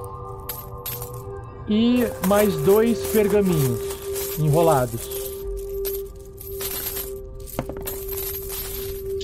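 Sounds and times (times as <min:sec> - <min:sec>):
gold and silver coins from a small chest clinking and jingling as they are counted: 0:00.0 - 0:09.2
low constant hum: 0:00.0 - 0:09.2
speech: 0:01.7 - 0:05.2.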